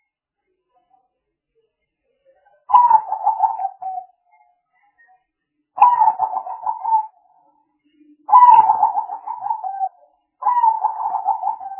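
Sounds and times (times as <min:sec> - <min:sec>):
spotted dove cooing used as a lure: 0:02.7 - 0:04.0, 0:05.8 - 0:07.1, 0:08.3 - 0:11.7.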